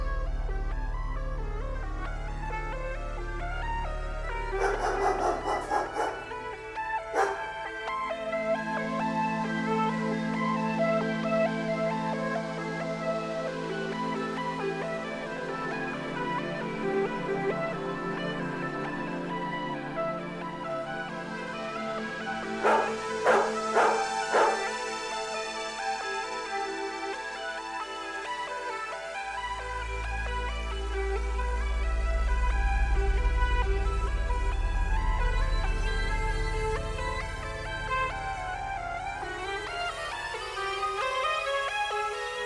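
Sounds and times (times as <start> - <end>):
steady hum: 0.0 - 26.9, 29.0 - 42.0
music: 0.0 - 42.4
dog barking: 3.2 - 9.8, 14.8 - 26.0
dog yipping or whimpering: 4.5 - 7.8, 22.6 - 24.9.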